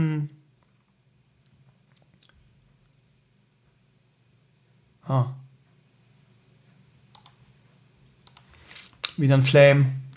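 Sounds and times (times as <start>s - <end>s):
speech: 5.1s - 5.4s, 9.2s - 10.0s
computer mouse clicks while an email is moved to a spam folder: 7.1s - 7.4s, 8.2s - 8.5s.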